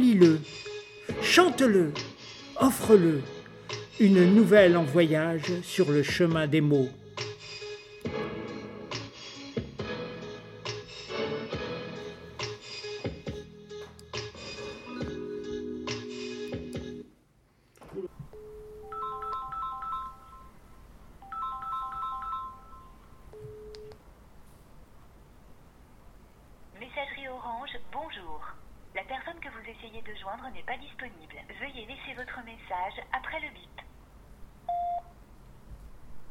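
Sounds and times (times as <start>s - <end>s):
speech: 0.2s - 0.6s, 1.2s - 3.4s, 4.0s - 7.0s
rising three-note phone network tones: 18.0s - 20.6s, 21.2s - 24.0s, 34.7s - 35.1s.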